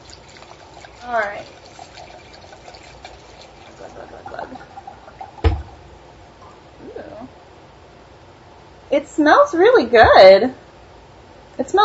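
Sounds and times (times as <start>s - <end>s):
Malvasia wine pouring into a glass: 0.0s - 5.9s
speech: 1.0s - 1.6s, 3.8s - 4.7s, 8.9s - 10.6s, 11.6s - 11.8s.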